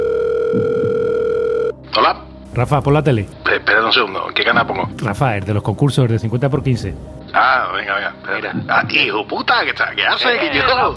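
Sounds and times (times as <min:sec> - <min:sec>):
telephone dial tone of an outgoing call: 0:00.0 - 0:01.8
speech: 0:02.1 - 0:10.9.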